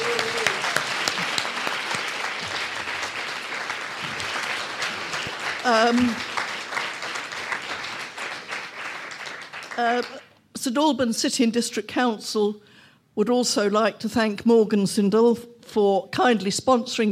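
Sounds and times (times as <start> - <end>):
audience applauding at a community event in St Albans: 0.0 - 10.3
speech: 5.7 - 6.3, 9.8 - 17.0.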